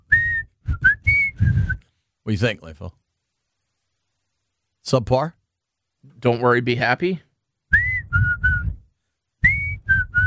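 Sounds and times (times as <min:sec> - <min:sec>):
person whistling a short tune: 0:00.0 - 0:01.9, 0:07.7 - 0:10.2
speech: 0:02.3 - 0:03.0, 0:04.8 - 0:05.4, 0:06.0 - 0:07.3.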